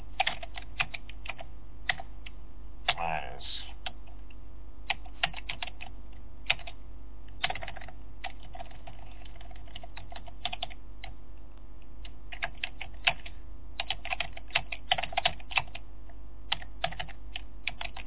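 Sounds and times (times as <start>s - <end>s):
rapid typing on a computer keyboard at a command prompt: 0.2s - 2.1s, 4.9s - 6.8s, 7.4s - 11.1s, 12.0s - 15.8s, 16.5s - 18.0s.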